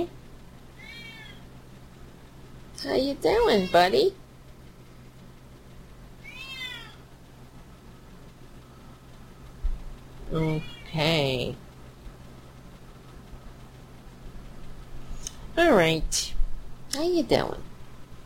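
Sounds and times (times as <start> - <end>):
cat meowing: 0.8 - 1.4, 6.2 - 7.0
speech: 2.8 - 4.2, 10.3 - 11.6, 15.6 - 16.4, 17.0 - 17.7.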